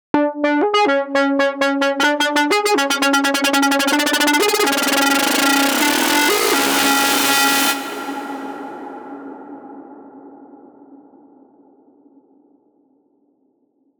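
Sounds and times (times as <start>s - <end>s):
synthesizer seizure sound effect: 0.2s - 8.7s.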